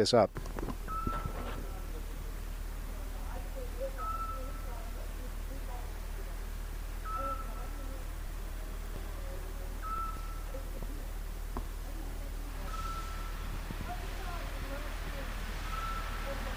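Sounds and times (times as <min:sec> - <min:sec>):
speech: 0:00.0 - 0:00.6
constant low city rumble: 0:00.0 - 0:16.5
indistinct murmur: 0:00.0 - 0:16.5
steady electronic beep on a city street in the embassy district: 0:00.9 - 0:01.7, 0:04.0 - 0:04.7, 0:07.0 - 0:07.9, 0:09.8 - 0:10.6, 0:12.6 - 0:13.4, 0:15.7 - 0:16.5.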